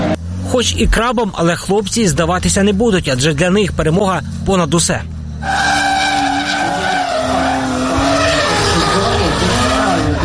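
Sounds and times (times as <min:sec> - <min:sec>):
BMW race car engine roaring: 0:00.0 - 0:10.2
speech: 0:00.5 - 0:05.8
race car tires skidding and squealing: 0:05.3 - 0:10.2.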